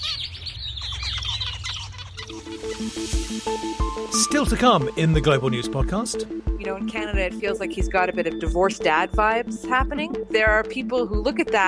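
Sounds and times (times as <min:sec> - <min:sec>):
harsh zebra finch calls: 0:00.0 - 0:05.0
zebra finch song: 0:00.0 - 0:09.9
speech: 0:02.3 - 0:11.6.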